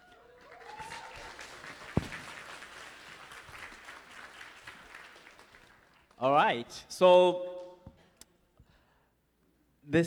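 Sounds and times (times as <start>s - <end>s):
audience applause: 0.0s - 6.2s
sharp loud clap or knock: 0.8s - 5.6s
speech: 6.2s - 7.5s.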